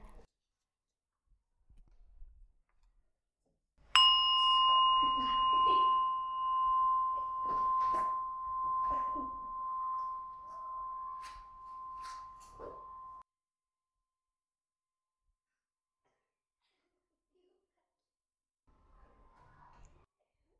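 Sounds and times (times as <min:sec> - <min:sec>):
mindfulness bell struck during a hand-breathing meditation practice: 0:04.0 - 0:13.2.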